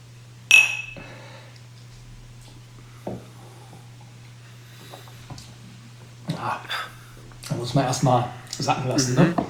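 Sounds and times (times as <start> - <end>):
glasses clinking in a whisky toast: 0.5 - 1.2
steady low hum: 0.5 - 1.4
speech: 7.6 - 9.4.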